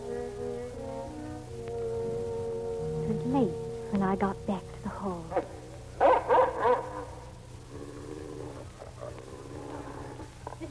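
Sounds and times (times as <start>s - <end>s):
low rumbling noise: 0.0s - 10.6s
speech: 3.3s - 5.5s
dog barking: 5.3s - 7.2s.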